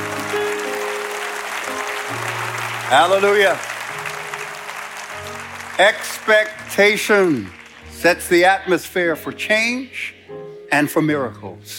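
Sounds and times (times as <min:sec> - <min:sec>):
crowd clapping steadily: 0:00.0 - 0:08.9
sustained keyboard chords: 0:00.0 - 0:11.7
speech: 0:02.9 - 0:03.7, 0:05.8 - 0:11.7.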